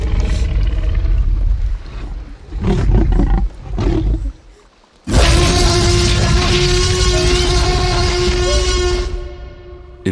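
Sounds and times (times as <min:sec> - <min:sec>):
deep rumbling creature growls built from elephant trumpeting: 0:00.0 - 0:04.4
shrill sustained trumpet-like creature bellow from elephant trumpeting: 0:05.1 - 0:10.0.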